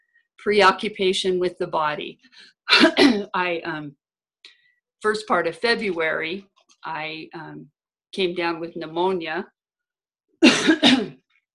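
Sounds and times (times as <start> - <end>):
speech: 0.4 - 9.6, 10.4 - 11.2
person coughing after pneumonia: 2.7 - 3.3, 10.4 - 11.2.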